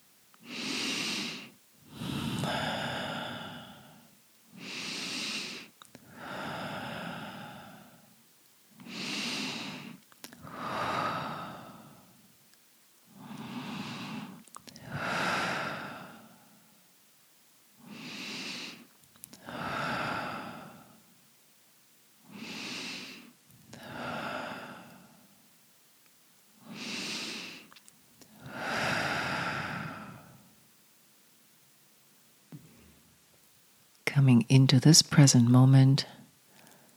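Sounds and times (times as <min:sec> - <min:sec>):
deep breathing in through nose and out through mouth: 0:00.4 - 0:08.2, 0:08.8 - 0:12.3, 0:13.1 - 0:16.8, 0:17.8 - 0:21.1, 0:22.2 - 0:25.4, 0:26.6 - 0:30.6, 0:36.4 - 0:36.9
speech: 0:34.2 - 0:36.2.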